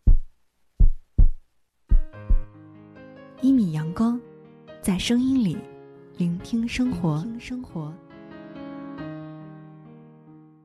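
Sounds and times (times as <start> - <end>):
heartbeat thumps: 0.0 - 2.5
speech: 3.4 - 4.2, 4.9 - 8.1.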